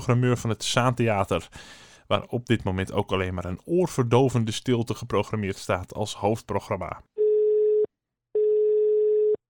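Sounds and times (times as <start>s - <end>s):
speech: 0.0s - 7.1s
telephone ringback tone while placing a call: 7.2s - 9.4s.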